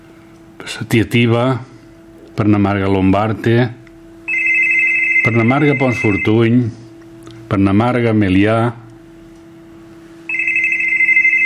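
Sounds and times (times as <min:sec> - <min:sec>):
low hum: 0:00.0 - 0:11.4
speech: 0:00.7 - 0:01.7, 0:02.4 - 0:03.8, 0:05.2 - 0:06.8, 0:07.5 - 0:08.8
telephone ringing with a steady electronic tone: 0:04.3 - 0:06.6, 0:10.3 - 0:11.4.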